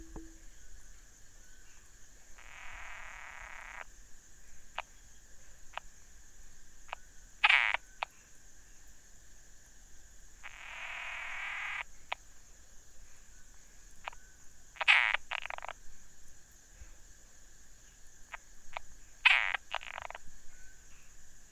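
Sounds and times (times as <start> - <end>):
frog croaking: 0.0 - 0.4, 2.4 - 3.9, 4.7 - 5.0, 6.8 - 8.2, 10.4 - 12.2, 14.8 - 15.8, 18.3 - 20.2
steady high-pitched background hum: 0.0 - 0.7.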